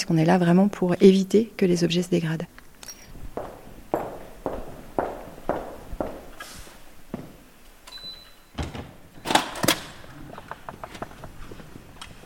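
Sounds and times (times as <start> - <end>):
speech: 0.0 - 2.6
footsteps on a hard floor: 3.1 - 7.5
door swinging open with a short creak: 7.8 - 10.6.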